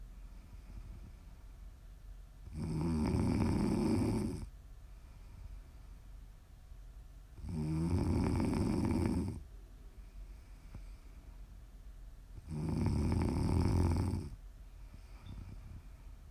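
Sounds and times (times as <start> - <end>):
person snoring: 2.5 - 4.5, 7.4 - 9.4, 12.4 - 14.4.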